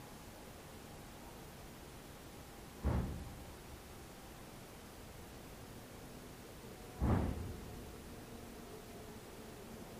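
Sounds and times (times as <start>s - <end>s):
bang on the 4th floor: 2.8s - 3.5s, 7.0s - 7.7s.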